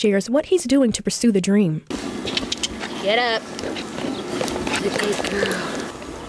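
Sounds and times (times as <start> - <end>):
speech: 0.0 - 3.9, 4.8 - 5.8
light brown thoroughbred horse trotting in a small corral: 1.9 - 6.2
faint voices murmuring outdoors: 2.9 - 5.9.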